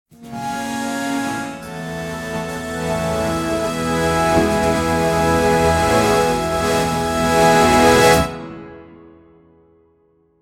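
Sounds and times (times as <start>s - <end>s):
dramatic music rise: 1.4s - 8.9s.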